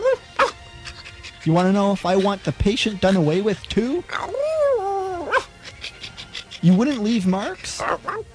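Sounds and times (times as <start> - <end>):
dog whimpering whine: 0.0 - 2.3, 4.1 - 8.3
speech: 1.4 - 4.5, 6.6 - 8.3.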